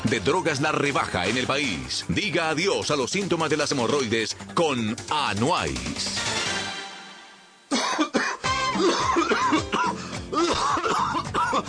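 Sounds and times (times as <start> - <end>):
speech: 0.1 - 6.4
harsh wet coughing fit with hacking bursts and throaty rasps: 7.7 - 11.6.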